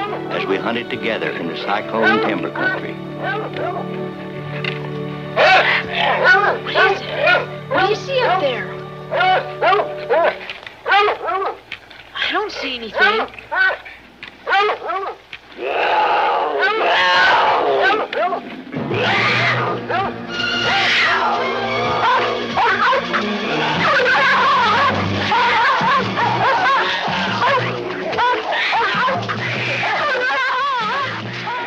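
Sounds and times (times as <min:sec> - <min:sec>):
speech: 0:00.5 - 0:11.6, 0:12.3 - 0:13.9
mountain lion and dog fighting with snarling, yowls and growls: 0:02.0 - 0:08.5, 0:09.1 - 0:11.8, 0:12.9 - 0:31.6
laughter: 0:21.1 - 0:31.6.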